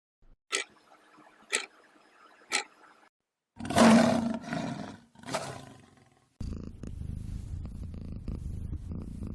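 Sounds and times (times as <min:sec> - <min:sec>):
lion roaring: 0:03.6 - 0:06.2
domestic cat purring: 0:06.4 - 0:09.3.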